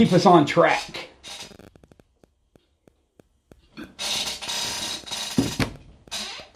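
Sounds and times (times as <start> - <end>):
speech: 0.0 - 1.4
chair squeaking and creaking: 0.5 - 2.6, 3.5 - 6.5.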